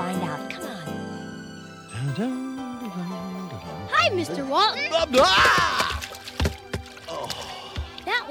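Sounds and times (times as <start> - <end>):
speech: 2.2 - 2.4, 4.0 - 5.7
foot splashing into a bucket of water: 5.0 - 8.1.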